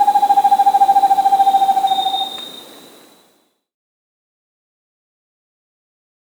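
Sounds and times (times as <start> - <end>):
steady high tone: 0.0 - 2.5
Vermiculated screech owl low trill in South America: 0.0 - 3.2.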